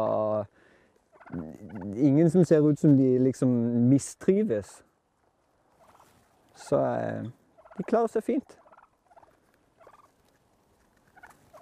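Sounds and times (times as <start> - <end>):
poultry calling outdoors: 1.1 - 2.1, 5.2 - 11.6
speech: 1.3 - 4.9, 6.6 - 8.6.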